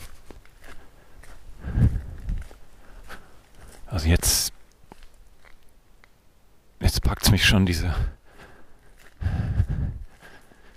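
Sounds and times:
footsteps walking through a forest at night in the Black Mountains: 0.0s - 6.3s, 6.9s - 10.7s
heavier low thuds of footsteps in a forest: 1.6s - 2.6s, 9.0s - 10.2s
speech: 3.9s - 4.5s, 7.3s - 8.2s.

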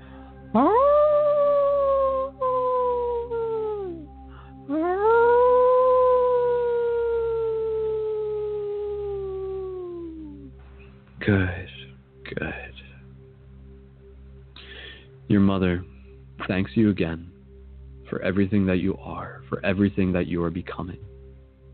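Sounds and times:
speech: 0.5s - 0.9s, 11.3s - 11.6s, 15.4s - 15.9s, 16.5s - 17.3s, 18.1s - 21.1s
wolf howling: 0.5s - 4.1s, 4.7s - 10.5s.

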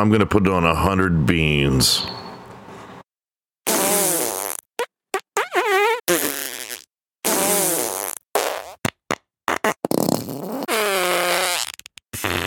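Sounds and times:
speech: 0.0s - 2.2s
wet fart sound effects from a novelty gadget: 3.7s - 12.4s.

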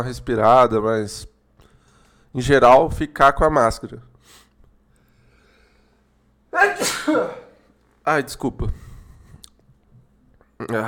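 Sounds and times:
speech: 0.0s - 1.3s, 2.3s - 4.1s, 6.5s - 7.4s, 8.0s - 8.8s, 10.6s - 10.8s
forceful loud sneeze: 6.5s - 7.7s.

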